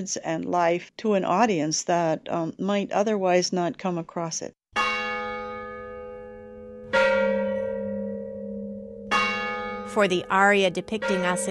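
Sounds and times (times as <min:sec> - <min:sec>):
speech: 0:00.0 - 0:04.6, 0:10.0 - 0:11.4
mission church bells ringing: 0:04.8 - 0:11.4.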